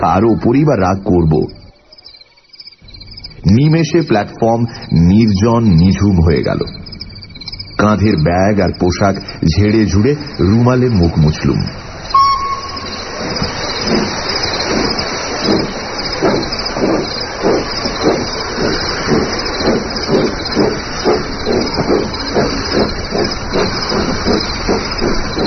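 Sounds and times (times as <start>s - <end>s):
speech: 0.0s - 1.6s, 3.4s - 6.8s, 7.8s - 11.8s
train chuffing while slowly pulling away: 2.8s - 25.4s
continuous loud hiss of a train: 3.3s - 25.4s
train whistle: 12.1s - 13.3s.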